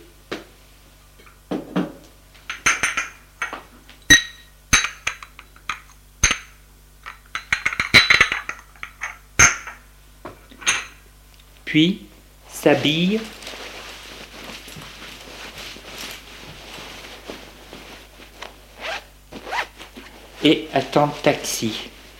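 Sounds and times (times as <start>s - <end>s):
breakfast dishes and glasses clinking: 2.5s - 6.5s, 7.1s - 9.8s, 10.6s - 11.0s
speech: 11.7s - 13.4s, 20.4s - 21.9s.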